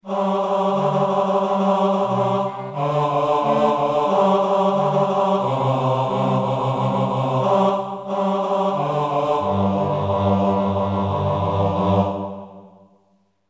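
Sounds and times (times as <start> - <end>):
bass choir singing: 0.0 - 12.9.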